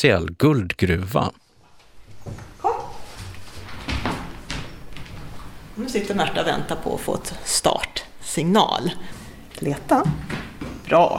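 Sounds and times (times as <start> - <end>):
speech: 0.0 - 1.4, 2.2 - 2.5, 5.8 - 11.1
quiet outdoor noise in snowy cold Hällefors: 1.2 - 11.1
sniffer dog whimpering in snowy cold Hällefors: 2.6 - 3.1
sniffer dog barking in snowy cold Hällefors: 2.6 - 3.2.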